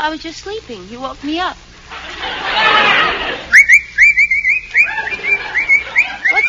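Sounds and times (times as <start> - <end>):
speech: 0.0 - 3.2
laughter: 1.9 - 3.6, 4.4 - 6.4
person whistling short bright notes: 3.5 - 6.4.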